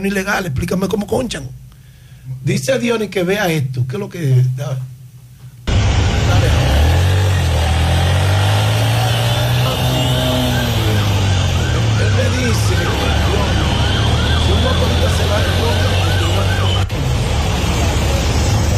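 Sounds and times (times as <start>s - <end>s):
speech: 0.0s - 1.6s, 2.4s - 4.9s
ambulance siren wailing: 5.7s - 18.2s
heavy traffic rumble: 5.7s - 18.7s.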